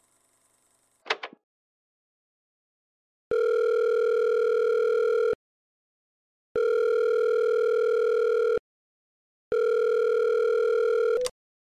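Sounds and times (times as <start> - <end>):
ringback tones of an unanswered phone call: 3.3 - 5.4, 6.6 - 8.6, 9.5 - 11.3.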